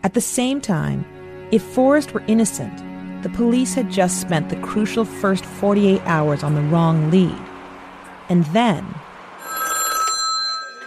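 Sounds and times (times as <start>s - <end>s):
speech: 0.0s - 7.5s, 8.3s - 9.0s
telephone ringing with a bright electronic trill: 9.4s - 10.8s.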